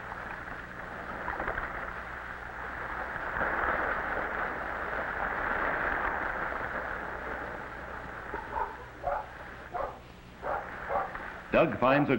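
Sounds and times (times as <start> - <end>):
sea waves rushing: 0.0 - 11.8
dog barking: 8.3 - 11.2
speech: 11.6 - 12.1.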